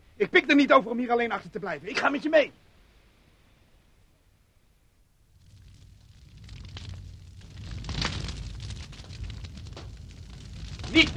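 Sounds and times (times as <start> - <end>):
speech: 0.2 - 2.6
small house burning in a fire: 5.3 - 11.1.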